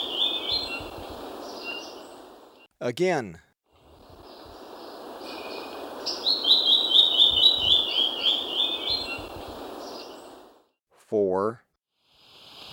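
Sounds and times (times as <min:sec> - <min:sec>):
Gray-throated leaftosser song in Ecuador: 0:00.0 - 0:02.7, 0:04.2 - 0:10.4
speech: 0:02.8 - 0:03.5, 0:11.1 - 0:11.6.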